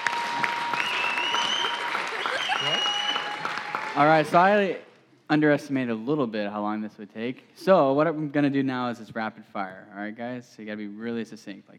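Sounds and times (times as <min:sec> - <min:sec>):
crowd clapping: 0:00.0 - 0:04.7
speech: 0:04.0 - 0:11.7.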